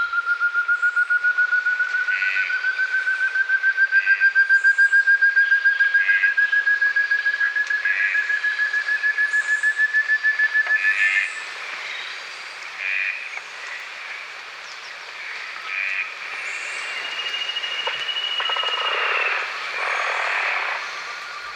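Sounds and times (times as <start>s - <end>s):
antthrush steady piercing whistled tone: 0.0s - 11.0s, 16.5s - 21.5s.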